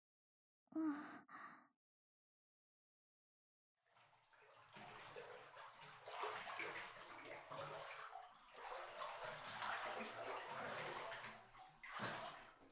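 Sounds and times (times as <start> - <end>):
bath water sloshing in a filled bathtub: 3.8 - 12.7.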